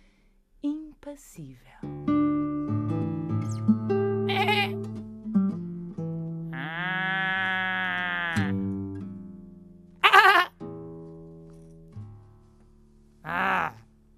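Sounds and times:
soft steady musical backdrop: 0.6 - 6.5, 8.5 - 13.2
speech: 1.0 - 2.1
person exclaiming: 4.3 - 4.8, 6.6 - 8.6, 10.0 - 10.5, 13.2 - 13.8
sheep bleating: 4.3 - 4.8, 6.5 - 8.6, 10.0 - 10.5, 13.2 - 13.8.

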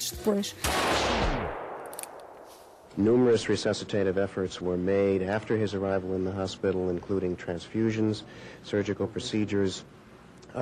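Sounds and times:
speech: 0.2 - 1.2, 3.0 - 10.5
loud burst of gunfire with a long decay: 0.6 - 3.7.

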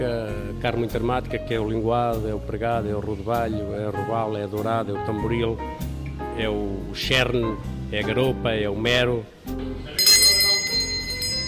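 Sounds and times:
speech: 0.0 - 10.1
kitchen bell ringing to signal dish ready: 10.0 - 11.4.

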